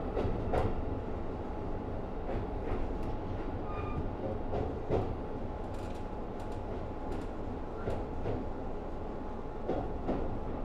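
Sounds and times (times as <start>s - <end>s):
train rumbling on rails heard from inside a moving carriage: 0.0s - 10.6s.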